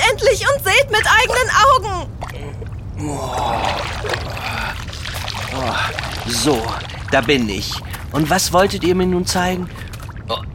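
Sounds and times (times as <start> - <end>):
speech: 0.3 - 1.6, 6.4 - 10.5
water splashing as someone rises out of a cool bath: 2.2 - 10.3.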